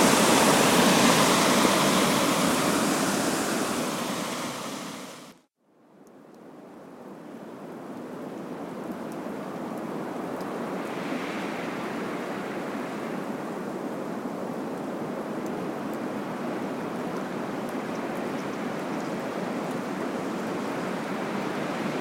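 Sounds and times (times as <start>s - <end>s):
water: 0.0s - 21.9s
wind in April: 0.0s - 21.9s.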